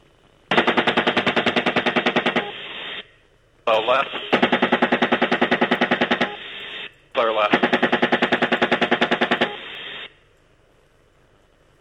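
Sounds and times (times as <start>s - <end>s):
helicopter-mounted gun firing a rapid burst at a truck: 0.5s - 2.6s, 4.3s - 6.4s, 7.4s - 9.7s
steady rumbling drone: 0.5s - 10.1s
speech: 3.7s - 4.5s, 7.2s - 7.8s.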